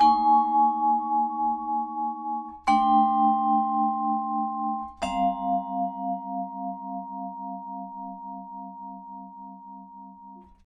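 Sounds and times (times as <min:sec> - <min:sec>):
vibraphone playing in G: 0:00.0 - 0:08.7.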